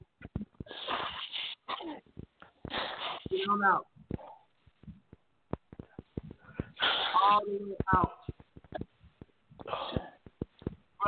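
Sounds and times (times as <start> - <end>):
person blowing their nose hard into a tissue: 0.7 - 1.7, 2.6 - 3.3, 6.8 - 7.2
soft bumps and rustles: 2.0 - 6.8, 7.5 - 11.0
speech: 3.4 - 3.9, 7.3 - 8.2.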